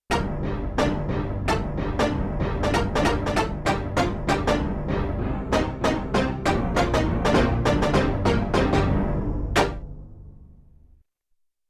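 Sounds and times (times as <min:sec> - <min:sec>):
dual orchestra hit on a sampler: 0:00.1 - 0:09.0, 0:09.6 - 0:09.9.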